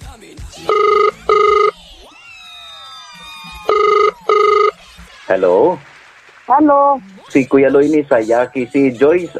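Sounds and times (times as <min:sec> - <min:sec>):
phone line ringing on an outgoing call: 0:00.6 - 0:01.8, 0:03.7 - 0:04.8
speech: 0:05.3 - 0:05.9, 0:06.5 - 0:09.3.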